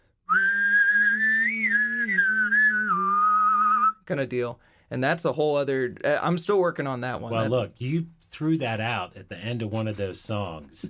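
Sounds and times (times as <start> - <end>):
person whistling a wavering melodic line: 0.3 - 4.0
speech: 4.1 - 10.8.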